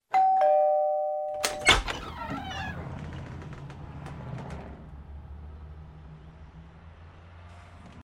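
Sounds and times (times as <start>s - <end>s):
doorbell ringing: 0.1s - 1.8s
door opening: 1.4s - 5.6s.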